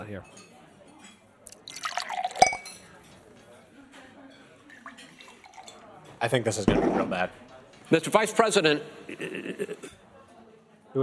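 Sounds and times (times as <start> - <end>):
speech: 0.1 - 0.5, 6.2 - 10.0
glass clinking against the rim: 1.5 - 2.8
tap water splashing into a glass: 1.5 - 2.8, 5.2 - 5.8.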